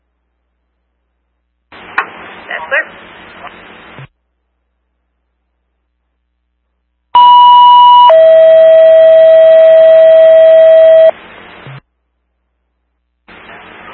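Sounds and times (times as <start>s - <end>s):
radio squelch tail: 1.7s - 4.1s, 13.3s - 13.9s
radio static burst: 1.7s - 4.1s, 11.1s - 11.8s, 13.3s - 13.9s
dispatch paging tones toning out a fire crew: 7.2s - 11.1s.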